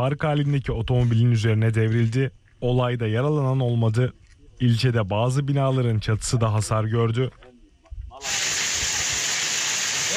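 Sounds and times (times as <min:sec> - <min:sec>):
speech: 0:00.0 - 0:07.4, 0:08.2 - 0:08.6
heavy downpour turning to hazelnut-sized hail in Boğazlayan, Yozgat: 0:08.2 - 0:10.1.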